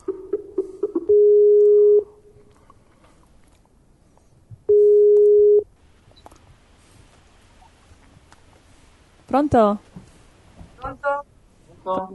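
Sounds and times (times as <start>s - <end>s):
Skype call connecting tone: 0.0s - 2.4s, 4.7s - 5.7s
speech: 9.4s - 9.9s, 11.9s - 12.1s.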